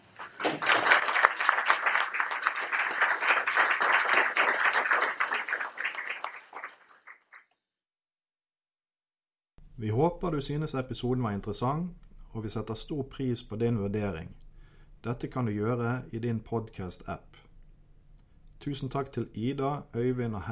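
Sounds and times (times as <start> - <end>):
audience applause of many hands clapping: 0.0 - 7.6
speech: 9.8 - 14.4, 15.0 - 17.4, 18.6 - 20.5.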